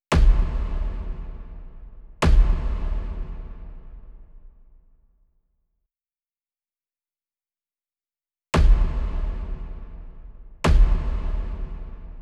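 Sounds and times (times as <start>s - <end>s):
monster kick drum: 0.1s - 4.3s, 8.6s - 12.2s.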